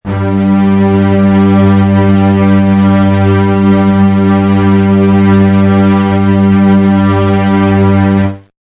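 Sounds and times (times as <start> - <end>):
bass note G: 0.0 - 8.5.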